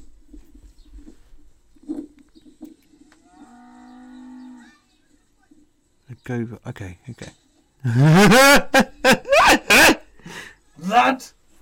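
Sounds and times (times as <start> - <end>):
rustling: 0.0 - 6.0
cow mooing long and loud in a video: 3.2 - 4.7
speech: 6.2 - 8.9
laughter: 7.8 - 10.1.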